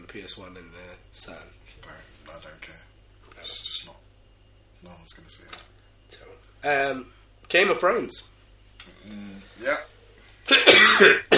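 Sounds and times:
speech: 0.1 - 4.1, 4.8 - 11.3
person clearing throat: 10.5 - 11.3.

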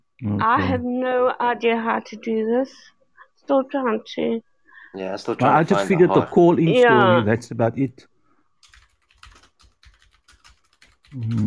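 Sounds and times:
speech: 0.2 - 8.1, 11.1 - 11.4
typing on a clicky computer keyboard: 8.6 - 11.4.

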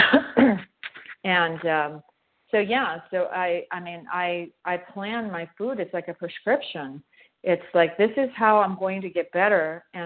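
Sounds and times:
person clearing throat: 0.0 - 1.0
speech: 1.2 - 10.0.

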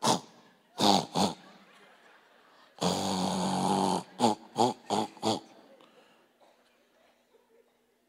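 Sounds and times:
voice imitating snoring in a Morse code pattern: 0.0 - 1.4, 2.8 - 5.5
laughter: 0.4 - 8.0.

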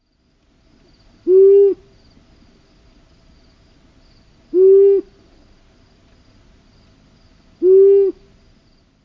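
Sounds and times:
insects chirping: 0.0 - 9.0
long-eared owl hooting: 1.2 - 1.9, 4.5 - 5.2, 7.6 - 8.3.

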